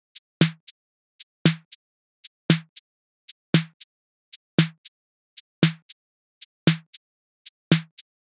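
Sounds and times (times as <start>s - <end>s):
808 drum machine hi-hat: 0.1s - 0.8s, 1.4s - 1.8s, 2.5s - 2.8s, 3.5s - 8.2s
808 drum machine snare: 0.1s - 0.8s, 1.4s - 1.8s, 2.5s - 2.8s, 3.6s - 3.9s, 4.6s - 6.0s, 6.7s - 8.1s.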